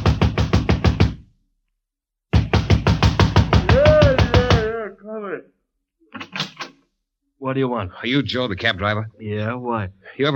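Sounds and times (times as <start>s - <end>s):
fist pounding on a door: 0.0s - 1.2s, 2.3s - 4.8s
speech: 7.4s - 10.3s.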